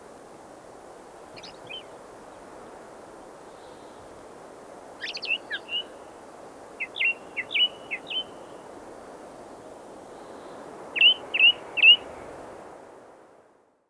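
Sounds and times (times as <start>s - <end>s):
redwing song: 1.3s - 2.4s, 5.0s - 8.7s, 10.2s - 12.1s.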